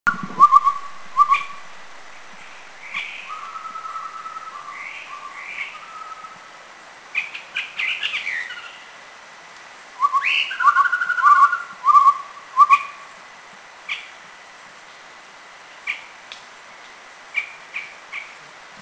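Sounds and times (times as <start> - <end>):
Chestnut-rumped Babbler calling: 0.0 - 1.7, 2.4 - 6.5, 7.1 - 8.9, 10.0 - 13.1.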